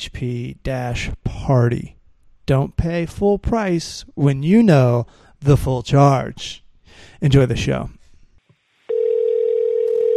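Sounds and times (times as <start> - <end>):
speech: 0.0 - 8.0
telephone dial tone before a call: 8.9 - 10.1.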